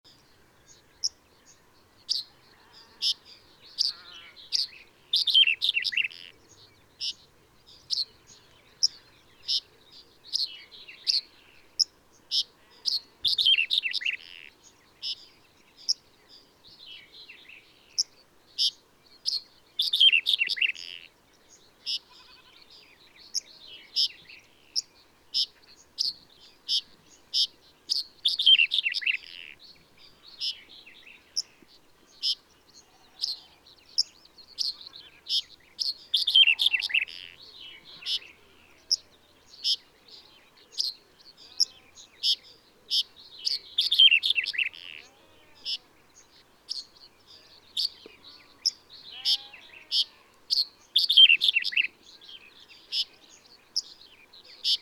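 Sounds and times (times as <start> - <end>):
male Red-headed Bunting Emberiza bruniceps singing in Karaguma Kazakhstan: 0.1 - 54.8.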